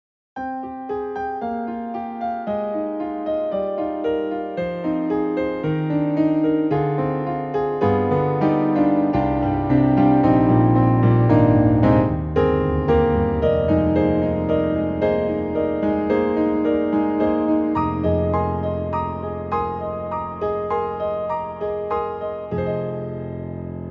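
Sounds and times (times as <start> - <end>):
Romantic Piano on Yamaha MOTIF-RACK XS: 0.4 - 23.8.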